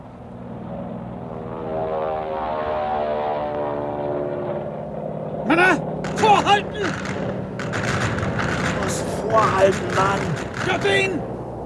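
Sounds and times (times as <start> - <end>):
WWII fighter plane propeller engines droning overhead: 0.0 - 11.6
speech: 9.3 - 11.2.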